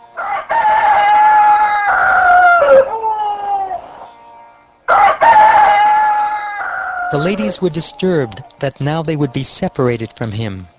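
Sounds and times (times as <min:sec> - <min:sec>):
rooster crowing at dawn: 0:00.0 - 0:08.5
speech: 0:07.1 - 0:10.7.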